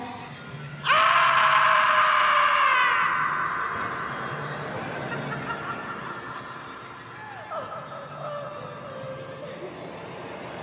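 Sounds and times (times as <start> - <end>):
person giving an anguished scream: 0.9 - 4.3
laughter: 2.8 - 10.6.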